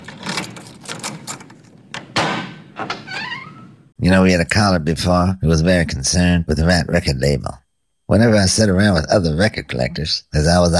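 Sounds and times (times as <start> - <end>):
small clicks and rattles: 0.0 - 2.1
door opening thunk: 1.2 - 3.7
door squeaking as it swings: 1.9 - 3.9
speech: 4.0 - 10.7.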